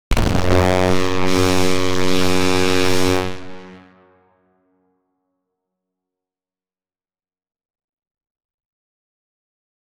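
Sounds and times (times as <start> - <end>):
loud trumpet: 0.1 - 4.2.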